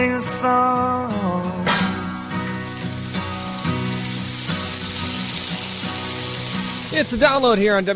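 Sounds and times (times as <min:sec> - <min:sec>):
speech: 0:00.2 - 0:01.1, 0:07.0 - 0:07.9
food sizzling and crackling in a hot frying pan: 0:01.9 - 0:07.9.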